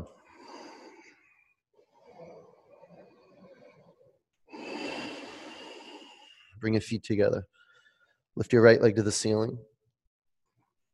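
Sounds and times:
slow throat breathing with sealed lips: 0.0s - 6.6s
speech: 6.6s - 7.5s, 8.4s - 9.7s.

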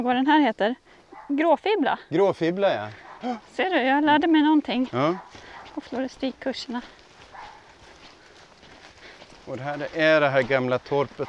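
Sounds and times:
speech: 0.0s - 7.0s, 9.5s - 11.2s
steady outdoor hiss: 0.0s - 11.2s
small dog barking: 1.1s - 1.4s, 3.0s - 3.5s, 5.0s - 5.8s, 7.2s - 7.8s.

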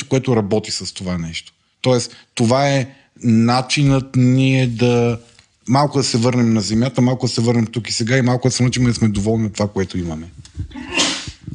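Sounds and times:
speech: 0.1s - 11.5s
man sneezing: 10.7s - 11.4s.

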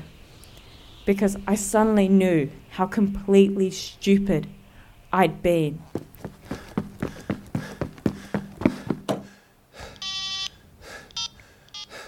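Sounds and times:
speech: 1.1s - 6.0s
steady rhythmic thumps: 6.0s - 9.3s
telephone busy tone on a call to the local fire department: 10.0s - 10.6s.

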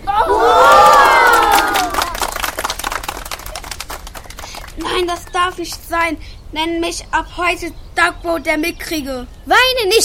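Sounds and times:
spectator crowd cheering and shouting: 0.0s - 2.3s
whoops: 0.0s - 2.3s
scattered clapping: 0.8s - 6.0s
speech: 5.4s - 10.0s.

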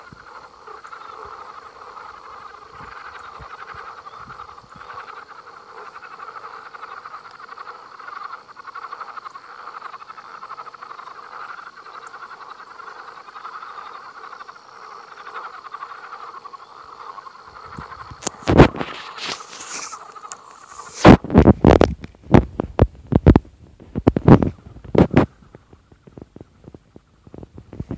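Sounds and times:
thin high insect whine: 0.0s - 21.5s
chorus of swamp frogs: 0.0s - 21.8s, 24.0s - 27.4s.

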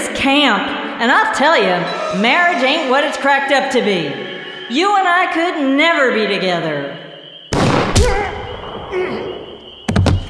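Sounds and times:
speech: 0.2s - 7.0s
gunshot fired at a camp: 7.5s - 9.3s.

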